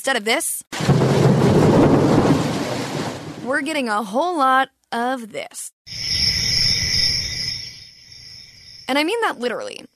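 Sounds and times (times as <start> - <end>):
speech: 0.0 - 2.2, 3.4 - 6.1, 8.9 - 9.9
crickets chirping in a dense chorus: 5.9 - 9.1.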